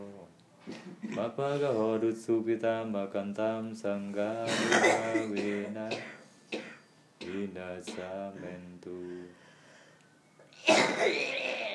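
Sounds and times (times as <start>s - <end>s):
speech: 1.1s - 6.2s, 7.3s - 9.4s, 10.7s - 11.4s
person coughing forcefully during guided meditation: 4.5s - 7.4s, 10.6s - 11.7s.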